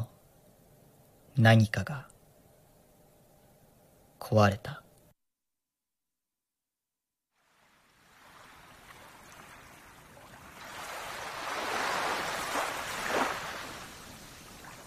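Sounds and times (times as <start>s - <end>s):
speech: 1.4s - 2.1s, 4.3s - 4.8s
gentle ocean waves: 7.4s - 14.8s.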